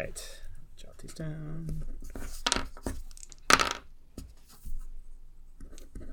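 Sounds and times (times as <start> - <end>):
speech: 0.0 - 0.4, 1.0 - 2.7
dice rolled across a surface: 2.3 - 3.9.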